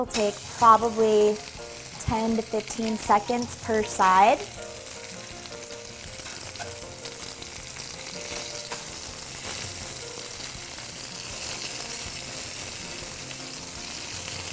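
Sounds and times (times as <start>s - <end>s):
speech: 0.0s - 4.6s
scallops searing in a hot pan: 0.0s - 14.5s.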